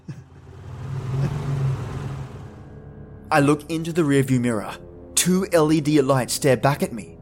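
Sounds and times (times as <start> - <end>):
car engine revving: 0.0 - 2.8
speech: 3.3 - 7.2.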